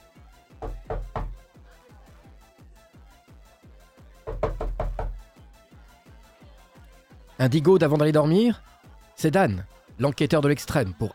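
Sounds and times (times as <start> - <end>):
knocking on an apartment door: 0.6 - 1.4, 4.3 - 5.2
speech: 7.4 - 11.1.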